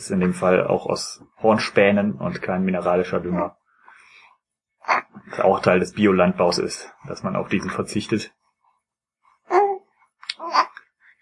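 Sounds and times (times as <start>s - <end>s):
speech: 0.0s - 3.6s, 4.8s - 8.4s
baby of nearly four months babbling on an adult's lap: 3.2s - 3.5s, 9.5s - 10.8s.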